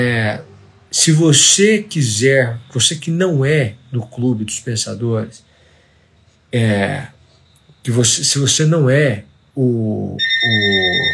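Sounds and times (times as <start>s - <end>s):
speech: 0.0s - 5.5s, 6.5s - 7.2s, 7.8s - 11.1s
bright high tones: 10.2s - 11.1s
landline telephone ringing electronically in a house: 10.2s - 11.1s.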